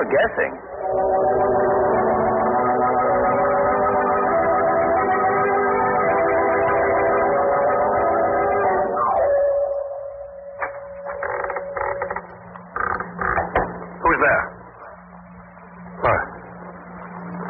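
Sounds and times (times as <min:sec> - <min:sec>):
speech: 0:00.0 - 0:01.6
low hum: 0:00.0 - 0:17.4
door creaking open: 0:10.5 - 0:14.0.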